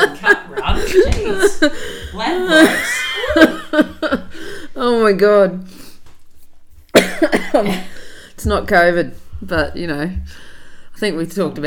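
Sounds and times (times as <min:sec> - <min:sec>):
laughter: 0:00.0 - 0:04.4
speech: 0:00.9 - 0:04.2, 0:05.0 - 0:05.8, 0:07.2 - 0:11.6
harsh raspy chesty cough: 0:07.0 - 0:08.0.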